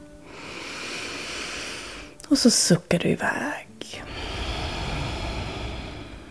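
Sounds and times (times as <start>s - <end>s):
deep inhale through the nose: 0.2s - 2.2s, 4.0s - 6.2s
speech: 2.3s - 4.0s.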